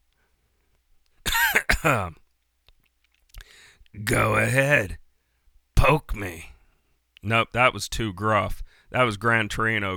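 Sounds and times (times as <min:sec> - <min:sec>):
person coughing and clearing throat: 0:01.3 - 0:02.2
speech: 0:01.8 - 0:02.2, 0:03.9 - 0:05.0, 0:05.8 - 0:06.5, 0:07.2 - 0:09.9.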